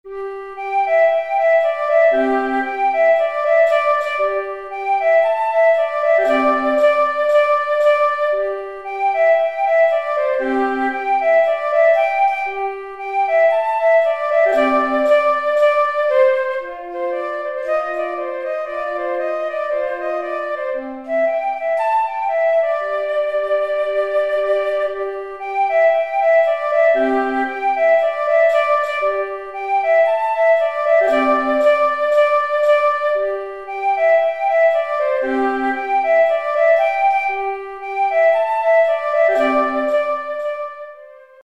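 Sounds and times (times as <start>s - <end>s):
woodwind instrument playing: 0.0s - 41.4s.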